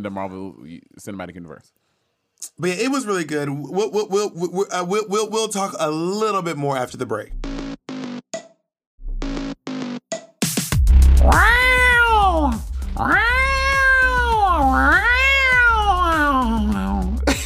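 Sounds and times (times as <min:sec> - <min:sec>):
speech: 0:00.0 - 0:01.8, 0:02.4 - 0:07.6
cat meowing in a riffing singing way: 0:11.2 - 0:17.2.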